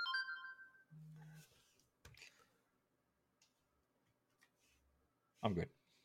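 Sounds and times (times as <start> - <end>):
phone ringtone: 0.0 - 0.9
speech: 5.4 - 5.8.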